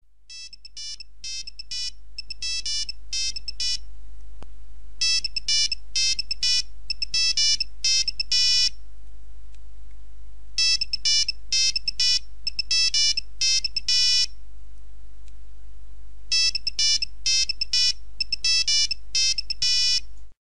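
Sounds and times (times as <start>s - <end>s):
original Nokia 3310 mobile phone ringtones: 0.3s - 3.8s, 5.0s - 8.7s, 10.6s - 14.3s, 16.3s - 20.0s.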